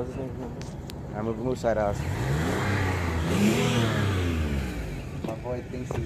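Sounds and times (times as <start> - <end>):
speech: 0.0 - 2.7, 3.3 - 4.1, 5.5 - 6.0
car engine revving during a burnout: 1.8 - 6.0.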